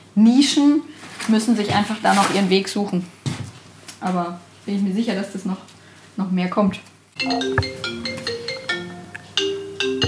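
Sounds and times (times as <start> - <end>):
speech: 0.2 - 3.2, 4.0 - 7.9
phone ringtone of electronic tones for an incoming call: 7.2 - 10.0.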